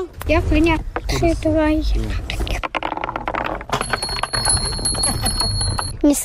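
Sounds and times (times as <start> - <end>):
speech: 0.3 - 2.3, 6.0 - 6.2
marbles clattering down a wooden marble run: 2.4 - 5.9
small bells ringing: 3.7 - 6.0.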